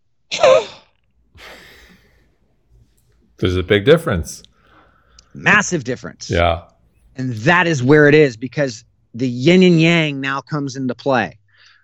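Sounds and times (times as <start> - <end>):
breath pushed out through the mouth in a breathing demonstration: 1.4 - 2.3
speech: 3.4 - 4.5, 5.4 - 11.4.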